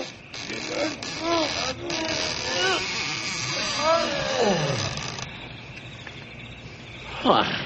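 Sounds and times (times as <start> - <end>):
big heavy doors creaking open in a ghost town: 0.0 - 5.7
steady chirring insect hum: 0.0 - 7.6
voices talking: 0.0 - 7.6.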